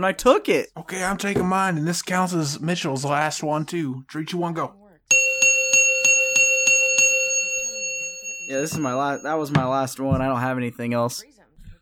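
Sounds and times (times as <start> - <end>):
speech: 0.0 - 4.8, 8.5 - 11.4
bell ringing: 5.1 - 9.8.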